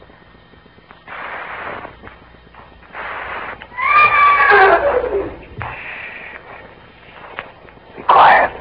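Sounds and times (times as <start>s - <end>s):
horse whinnying: 3.7s - 5.4s.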